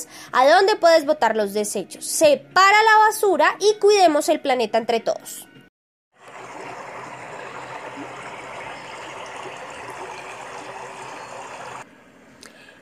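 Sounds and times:
speech: 0:00.3 - 0:05.5
steady flowing water: 0:06.2 - 0:11.8.

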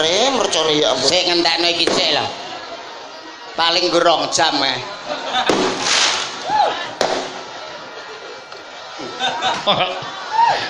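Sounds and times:
speech: 0:00.0 - 0:02.4, 0:03.6 - 0:05.6, 0:09.2 - 0:10.6
people chattering: 0:00.0 - 0:10.6
firecracker bangs: 0:01.8 - 0:02.3, 0:05.5 - 0:07.5
people chuckling: 0:04.8 - 0:05.8, 0:07.7 - 0:10.6.

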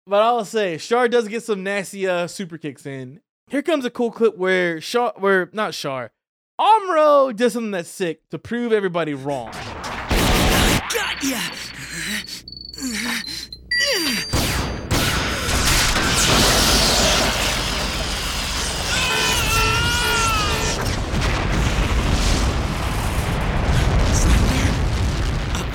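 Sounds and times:
speech: 0:00.1 - 0:09.8, 0:11.2 - 0:12.2
mobile suit blowing up in a roaring explosion: 0:09.5 - 0:11.6, 0:14.4 - 0:25.7
sci-fi beam rifle firing with a sharp zap: 0:09.6 - 0:11.8, 0:14.3 - 0:18.9.

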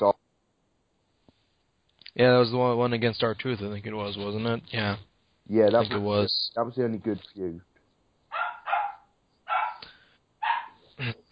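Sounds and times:
speech: 0:00.0 - 0:00.2, 0:02.2 - 0:07.7, 0:11.0 - 0:11.2
dog barking while being fed: 0:08.3 - 0:10.8.

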